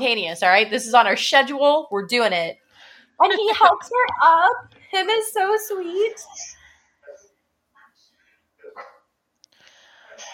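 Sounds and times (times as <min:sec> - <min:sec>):
speech: 0:00.0 - 0:02.6, 0:03.2 - 0:06.6
dog barking: 0:08.6 - 0:09.1.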